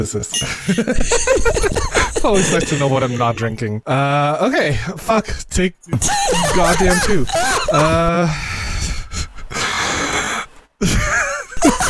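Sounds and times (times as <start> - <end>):
speech: 0.0 - 8.5, 10.8 - 11.1
laughter: 0.5 - 3.6, 6.0 - 8.2, 10.8 - 11.8
deep heavy breathing and long breathy sighs: 7.3 - 11.2.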